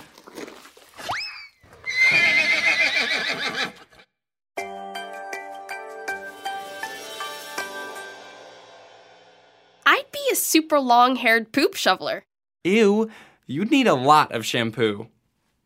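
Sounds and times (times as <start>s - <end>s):
horse whinnying: 1.0s - 4.1s
speech: 10.5s - 15.2s.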